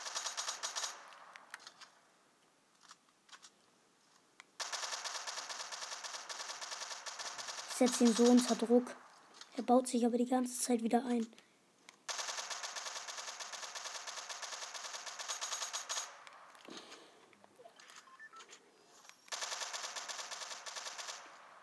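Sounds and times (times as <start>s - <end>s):
rapid automatic fire from an MK7 rifle in a video game: 0.0s - 1.8s, 4.6s - 8.8s, 12.1s - 16.5s, 19.3s - 21.6s
speech: 7.8s - 9.0s, 9.6s - 11.4s.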